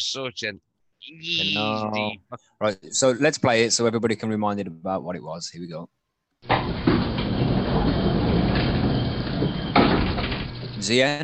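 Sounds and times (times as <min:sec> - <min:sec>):
speech: 0:00.0 - 0:06.8, 0:10.8 - 0:11.2
elevator door sliding shut with a low rumbling hum: 0:06.4 - 0:10.9.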